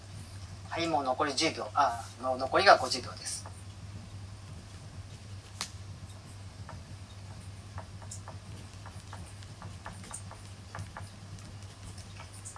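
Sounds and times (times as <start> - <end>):
steady low electrical hum: 0.0 - 12.5
speech: 0.8 - 3.6
pen writing notes on scrap paper: 8.0 - 12.5.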